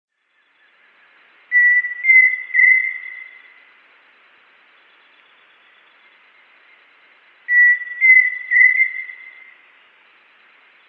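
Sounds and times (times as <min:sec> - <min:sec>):
Pheasant cuckoo (Dromococcyx phasianellus) whistling a three-note phrase: 0:01.5 - 0:03.4, 0:07.5 - 0:09.5.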